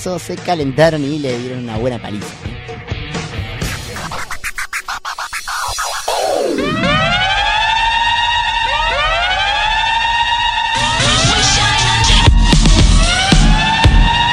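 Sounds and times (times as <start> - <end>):
speech: 0.0 - 2.9
falling sweep: 3.6 - 12.0
scratchy clattering noise: 3.7 - 7.0
siren wailing in repeated rising tones: 5.4 - 14.3.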